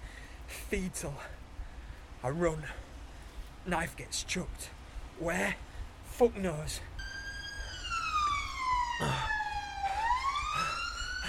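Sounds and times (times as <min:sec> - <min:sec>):
speech: 0:00.7 - 0:01.4, 0:02.2 - 0:02.9, 0:03.6 - 0:06.9
police siren wailing: 0:06.9 - 0:11.2.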